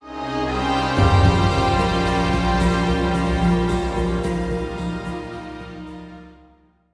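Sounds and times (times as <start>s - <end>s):
stinger: 1.0s - 6.2s.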